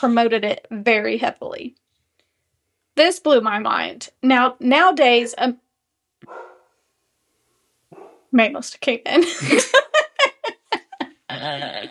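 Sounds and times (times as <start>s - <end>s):
speech: 0.0s - 1.8s, 3.0s - 5.6s, 6.2s - 6.5s, 8.3s - 9.8s
dog barking: 6.2s - 6.8s, 7.9s - 8.3s.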